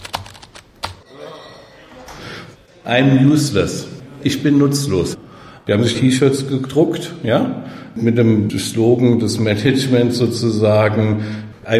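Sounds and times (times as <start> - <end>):
computer keyboard typing: 0.0 - 1.0
speech: 2.8 - 11.7.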